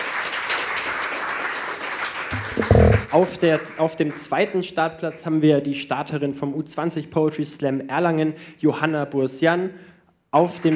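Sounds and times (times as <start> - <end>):
audience at a poetry slam clapping: 0.0 - 4.9, 10.4 - 10.7
speech: 2.6 - 10.7.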